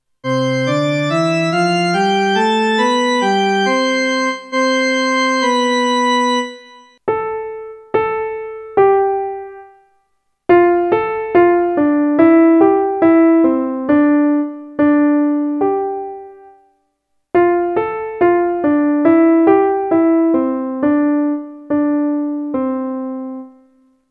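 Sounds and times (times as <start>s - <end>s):
piano: 0.0s - 24.0s
organ: 0.2s - 7.0s.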